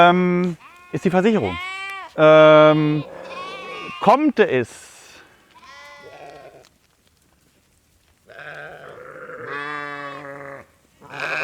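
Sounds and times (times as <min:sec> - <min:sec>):
speech: 0:00.0 - 0:03.2, 0:04.0 - 0:04.9
herd of goats or sheep bleating: 0:00.0 - 0:06.7, 0:08.3 - 0:11.4.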